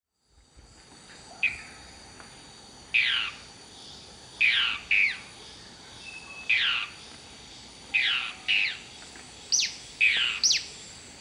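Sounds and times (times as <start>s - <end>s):
dusky-throated antshrike chirped calls: 4.4s - 5.3s, 6.0s - 7.0s, 7.9s - 8.9s, 9.5s - 10.8s.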